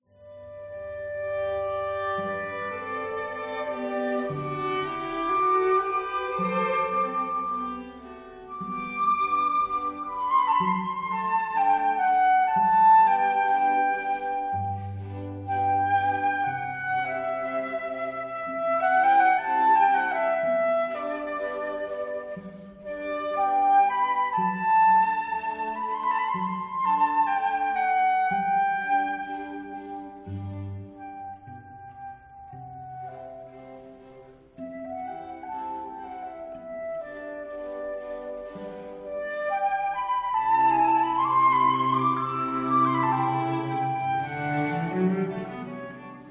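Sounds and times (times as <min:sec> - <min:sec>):
quartet for flute and strings: 0:00.0 - 0:46.2.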